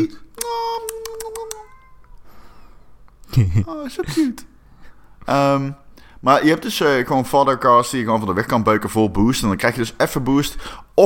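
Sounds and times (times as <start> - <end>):
speech: 0.0 - 0.2, 3.4 - 4.5, 5.2 - 11.0
cat meowing: 1.4 - 2.2.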